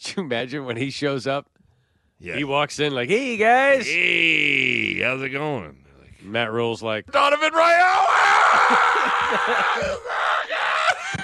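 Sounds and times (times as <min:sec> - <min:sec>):
speech: 0:00.1 - 0:01.6, 0:02.2 - 0:10.2
man screaming with a harsh strained yell: 0:07.5 - 0:11.2
laughter: 0:08.4 - 0:11.2.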